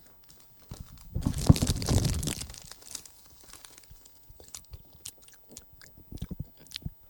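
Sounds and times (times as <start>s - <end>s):
chocolate bar wrapper crinkling and chocolate snapping: 0.0s - 5.6s
crunchy chewing of chocolate: 0.0s - 7.0s.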